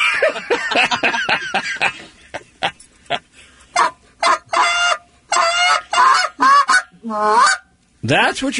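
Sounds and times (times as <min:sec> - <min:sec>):
laughter: 0:00.0 - 0:03.3
speech: 0:00.2 - 0:02.2, 0:07.1 - 0:07.4, 0:08.1 - 0:08.5
goose call blown in honks and clucks: 0:03.8 - 0:07.7.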